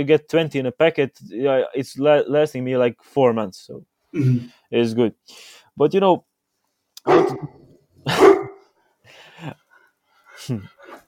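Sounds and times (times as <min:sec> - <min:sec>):
speech: 0:00.0 - 0:06.3, 0:07.0 - 0:08.4, 0:09.4 - 0:09.6, 0:10.4 - 0:10.8
pet dog barking and yelping indoors at home: 0:07.0 - 0:08.7.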